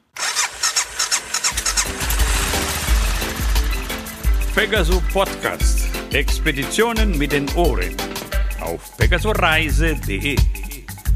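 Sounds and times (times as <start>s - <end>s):
motorcycle engine cranking and starting: 0.0s - 6.0s
speech: 4.6s - 10.6s.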